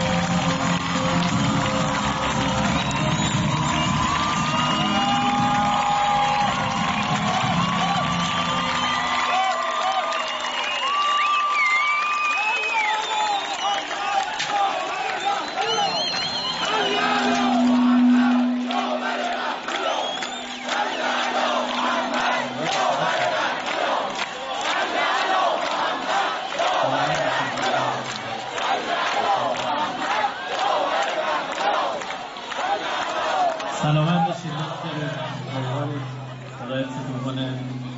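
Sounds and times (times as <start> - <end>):
large crowd clapping: 0.0 - 37.9
shouts and whistles: 2.2 - 23.1.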